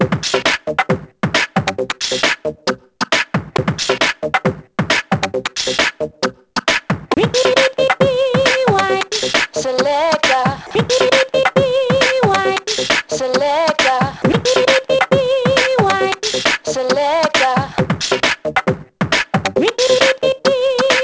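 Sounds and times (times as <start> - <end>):
2Step beat: 0.0 - 21.0.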